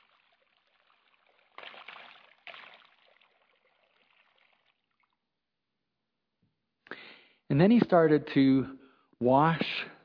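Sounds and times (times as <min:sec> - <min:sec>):
water pouring into a basin: 0:00.0 - 0:05.2
speech: 0:07.5 - 0:09.8.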